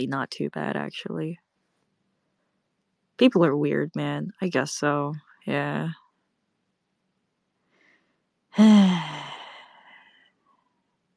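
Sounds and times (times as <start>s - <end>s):
speech: 0.0s - 1.4s, 3.2s - 6.0s, 8.6s - 9.2s
person imitating heavy out-of-breath breathing: 8.6s - 9.7s.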